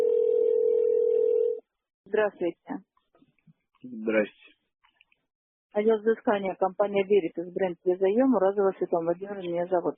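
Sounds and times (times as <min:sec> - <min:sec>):
telephone line tone while a call is being placed: 0:00.0 - 0:01.6
speech: 0:02.2 - 0:02.9, 0:03.8 - 0:04.6, 0:05.8 - 0:09.9.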